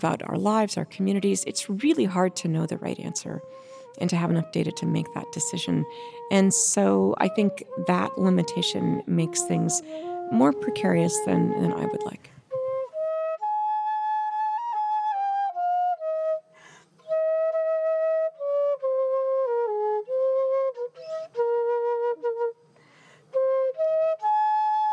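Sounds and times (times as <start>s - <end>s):
speech: 0.0s - 12.4s
solo flute melody played aboard the International Space Station: 1.4s - 24.9s
soft breaths between flute phrases: 3.4s - 4.0s.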